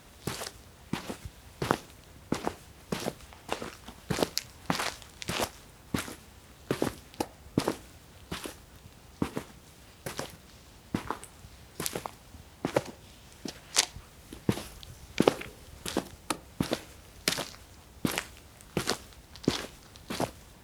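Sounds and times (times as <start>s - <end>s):
footsteps walking on pavement: 0.3s - 20.4s.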